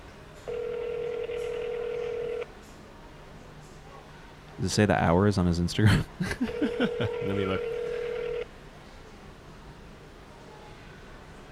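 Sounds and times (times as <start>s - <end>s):
steady electronic telephone keypad dialing tone: 0.5s - 2.4s, 6.8s - 8.4s
speech: 4.6s - 7.8s
laughter: 5.8s - 7.6s.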